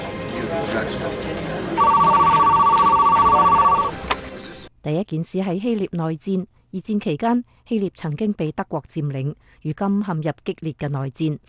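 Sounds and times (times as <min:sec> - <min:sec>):
speech: 0:00.6 - 0:02.1, 0:04.8 - 0:11.4
telephone ringing with a fast buzzing trill: 0:01.8 - 0:04.0.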